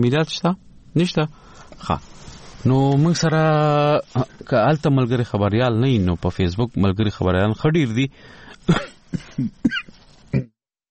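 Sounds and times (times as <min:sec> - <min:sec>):
speech: 0:00.0 - 0:09.8
hoarse coughs: 0:08.7 - 0:10.5.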